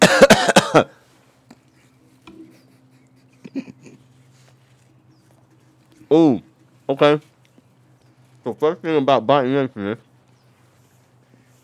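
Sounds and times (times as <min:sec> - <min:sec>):
harsh coughs: 0:00.0 - 0:01.0, 0:03.4 - 0:04.0
speech: 0:00.7 - 0:01.0, 0:06.1 - 0:07.3, 0:08.4 - 0:10.1
faint soft clicks and rustles: 0:01.1 - 0:08.5, 0:10.0 - 0:11.6.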